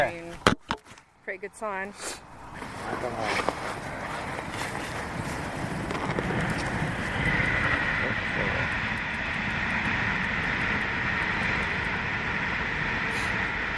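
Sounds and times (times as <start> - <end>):
speech: 1.3 - 4.0
train rumbling past on nearby railway line: 2.2 - 13.7
wind buffeting the microphone: 2.3 - 13.7.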